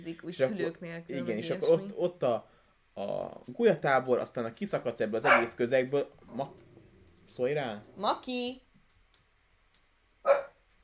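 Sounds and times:
speech: 0.0 - 6.7, 7.3 - 8.6
dog barking: 5.2 - 5.6, 10.2 - 10.6.

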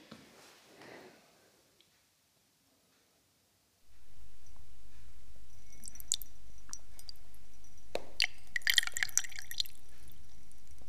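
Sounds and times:
woman urinating into a glass: 5.5 - 10.8.

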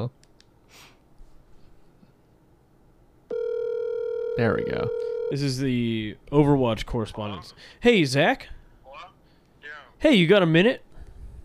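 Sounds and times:
speech: 0.0 - 0.9, 4.4 - 8.6, 10.0 - 10.9
telephone tone from dialing in a call: 3.3 - 5.4.

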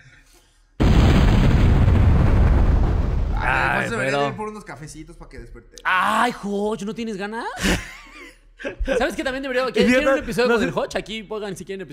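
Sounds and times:
explosion sound effect with heavy rumbling roar: 0.8 - 3.8
speech: 3.9 - 8.0, 8.6 - 11.9
laughter: 7.6 - 10.8.

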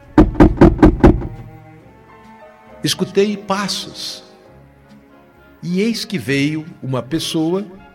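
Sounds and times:
knocking on a wooden door: 0.0 - 1.5
speech: 2.8 - 4.3, 5.6 - 7.8.

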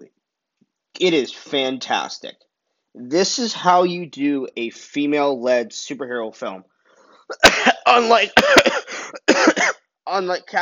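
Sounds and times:
speech: 1.0 - 6.7, 7.3 - 10.5
person clearing throat: 7.3 - 9.8
person coughing: 7.3 - 9.8.

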